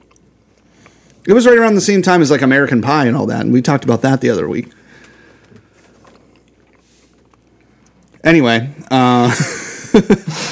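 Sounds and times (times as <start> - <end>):
person chewing food: 0.0 - 1.3, 4.7 - 8.2
low hum: 0.0 - 10.4
speech: 1.2 - 4.8, 8.3 - 10.4
laughter: 9.1 - 10.4.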